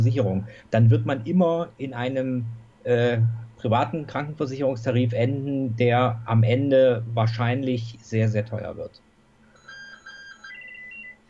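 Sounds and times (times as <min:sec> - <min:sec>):
speech: 0:00.0 - 0:09.1
electronic telephone beep pattern: 0:09.5 - 0:11.2.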